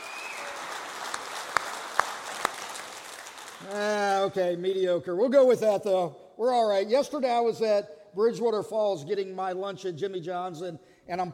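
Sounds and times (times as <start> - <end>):
scattered audience applause: 0.0 - 4.2
speech: 3.6 - 11.3.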